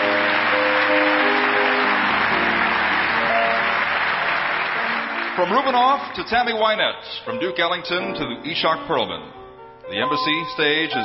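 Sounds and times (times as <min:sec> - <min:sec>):
crowd applauding: 0:00.0 - 0:06.7
speech: 0:05.4 - 0:11.0
faint tonal music: 0:07.2 - 0:11.0.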